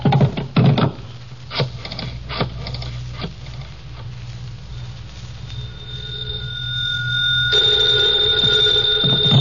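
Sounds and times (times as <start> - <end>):
knocks and clatters: 0.0 - 1.0
telephone ringing: 5.6 - 9.3.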